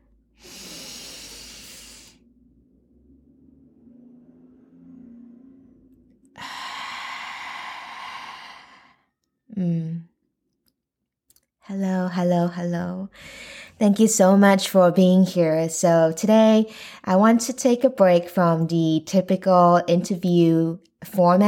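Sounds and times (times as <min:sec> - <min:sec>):
slow breathing out through the mouth during a paced breathing exercise: 0:00.4 - 0:02.3, 0:06.4 - 0:09.0
speech: 0:09.6 - 0:09.9, 0:11.7 - 0:21.4.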